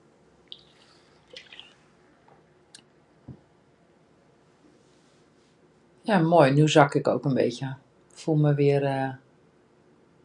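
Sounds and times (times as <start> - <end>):
person sipping water: 0.5 - 1.8
speech: 6.1 - 9.2.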